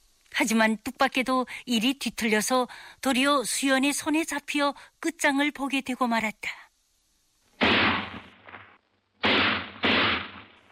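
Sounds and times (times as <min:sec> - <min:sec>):
speech: 0:00.4 - 0:06.6
loud sharp gunshots: 0:07.6 - 0:10.7.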